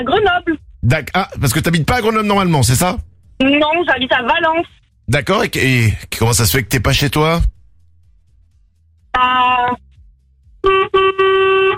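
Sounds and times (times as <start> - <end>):
speech: 0.0 - 7.6, 9.2 - 9.9
truck horn honking: 10.6 - 11.7.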